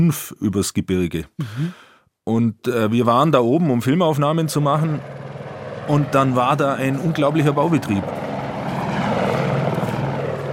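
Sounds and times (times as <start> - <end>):
speech: 0.0 - 5.3, 5.9 - 8.2
helicopter flying overhead with rotor rumble: 4.3 - 10.5.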